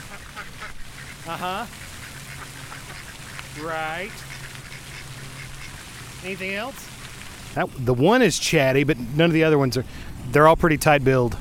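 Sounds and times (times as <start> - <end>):
duck quacking: 0.0 - 6.7
steady hiss of noise: 0.0 - 11.3
speech: 1.3 - 1.8, 3.6 - 4.3, 6.2 - 6.9, 7.6 - 11.3.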